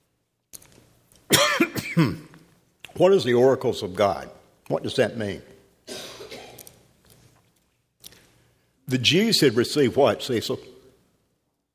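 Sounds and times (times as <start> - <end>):
person clearing throat: 1.3 - 2.4, 5.9 - 6.8
person coughing: 1.3 - 2.4, 5.9 - 6.8
speech: 2.0 - 2.3, 3.0 - 5.5, 8.9 - 10.8.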